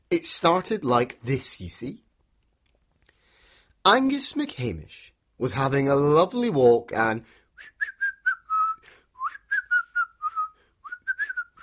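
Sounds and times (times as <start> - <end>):
speech: 0.1 - 2.0, 3.8 - 7.7
man whistling a tune outdoors in the sunshine: 7.6 - 11.6.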